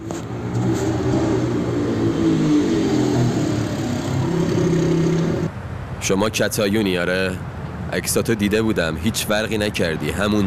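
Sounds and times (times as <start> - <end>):
motorcycle engine revving and approaching: 0.0 - 5.5
speech: 6.0 - 10.4.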